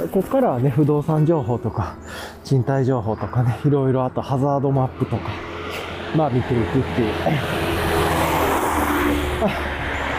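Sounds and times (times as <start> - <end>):
speech: 0.0 - 5.5, 6.1 - 7.7, 9.4 - 9.7
loud passing car traffic: 0.3 - 10.1.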